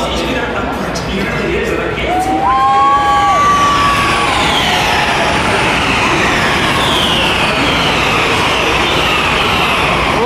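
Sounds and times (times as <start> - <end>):
crowd noise at a Formula E race: 0.0 - 10.2
Formula E electric race cars whining past on the start-finish straight: 2.2 - 10.2.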